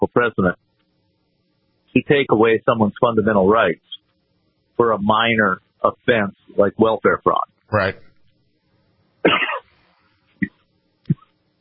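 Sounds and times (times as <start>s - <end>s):
speech: 0.1s - 0.6s, 2.0s - 4.0s, 4.8s - 8.1s, 9.2s - 9.5s
person with a sore throat coughing: 9.2s - 9.7s.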